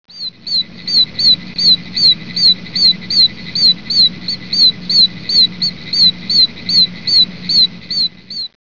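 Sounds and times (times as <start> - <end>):
oak toad calling: 0.1 - 8.6.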